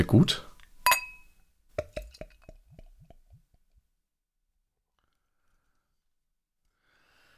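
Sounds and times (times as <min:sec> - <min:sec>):
speech: 0:00.0 - 0:00.5
beer bottle cap coming off with metallic clink: 0:00.9 - 0:02.0.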